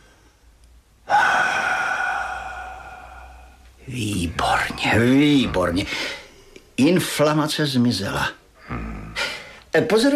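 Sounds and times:
breathy vocal sound: 1.0s - 6.4s, 8.6s - 9.5s
person exhaling loudly during a medical-style examination: 1.1s - 3.7s
speech: 3.9s - 6.2s, 6.8s - 8.8s, 9.8s - 10.1s.

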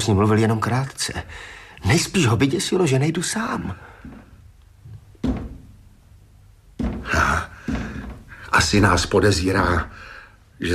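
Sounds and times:
speech: 0.0s - 4.2s, 8.5s - 10.7s
dull knocks on a locked door from inside: 5.2s - 5.8s, 6.8s - 9.0s.

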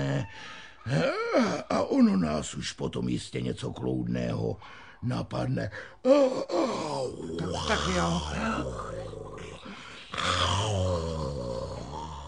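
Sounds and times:
speech: 0.2s - 1.2s, 2.3s - 9.0s
person imitating dogs grumbling and groaning as they fall asleep: 6.0s - 12.2s.

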